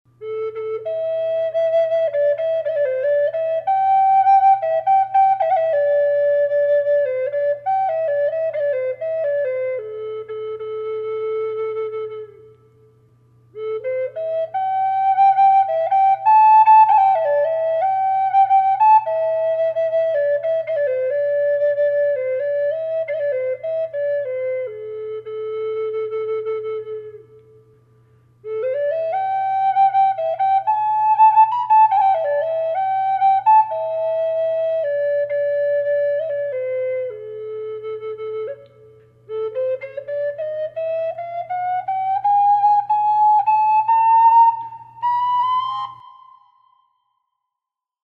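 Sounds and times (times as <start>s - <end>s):
flute with reverb: 0.1s - 47.6s.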